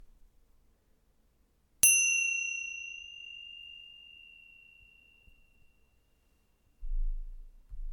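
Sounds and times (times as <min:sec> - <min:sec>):
chimes: 0:01.8 - 0:06.3.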